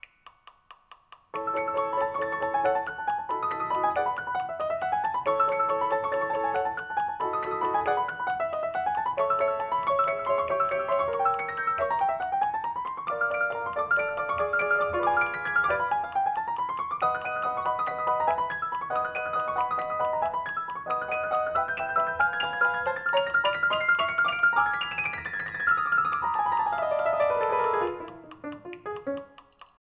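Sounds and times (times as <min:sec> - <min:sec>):
1908 Broadwood piano: 0:01.3 - 0:29.8.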